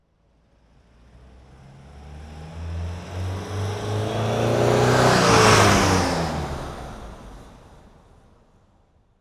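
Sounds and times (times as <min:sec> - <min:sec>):
car passing by: 0:00.8 - 0:08.0.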